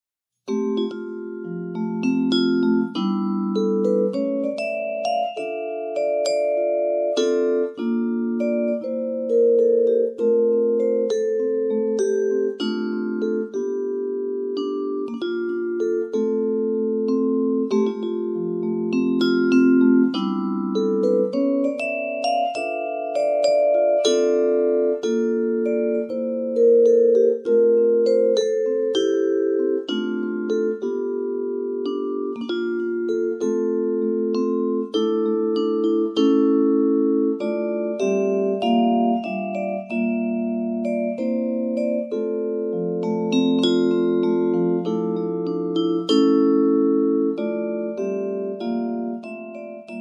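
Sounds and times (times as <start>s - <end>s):
vibraphone: 0.5s - 49.9s.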